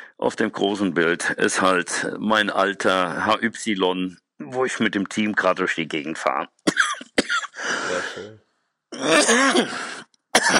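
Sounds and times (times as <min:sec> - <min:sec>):
speech: 0:00.2 - 0:06.9, 0:08.2 - 0:10.5
person coughing in a rasping throaty fit: 0:06.7 - 0:08.3, 0:09.0 - 0:10.5.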